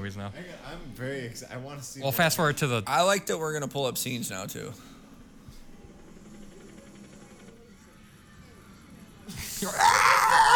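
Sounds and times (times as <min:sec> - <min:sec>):
speech: 0:00.0 - 0:05.0, 0:09.6 - 0:09.9
stock screams in a movie scene: 0:09.6 - 0:10.5.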